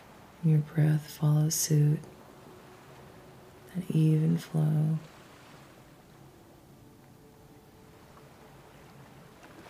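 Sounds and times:
ocean surf roaring: 0:00.0 - 0:09.6
speech: 0:00.4 - 0:02.2, 0:03.8 - 0:05.2.

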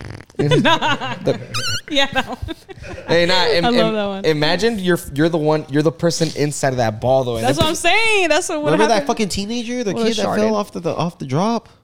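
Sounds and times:
fart noise made with the mouth: 0:00.0 - 0:02.7
laughter: 0:00.4 - 0:03.9
speech: 0:00.4 - 0:11.8
squeaky tone: 0:01.5 - 0:02.0.

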